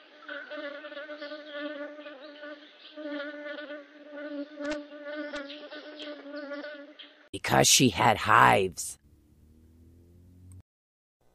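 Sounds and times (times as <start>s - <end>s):
bee buzzing: 0.0s - 7.1s
speech: 7.5s - 9.0s.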